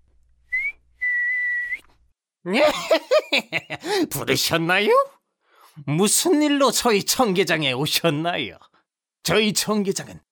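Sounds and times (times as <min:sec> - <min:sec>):
person whistling a rising note and a held note: 0:00.5 - 0:01.9
speech: 0:02.4 - 0:05.2, 0:05.8 - 0:10.2
laughter: 0:02.5 - 0:04.1.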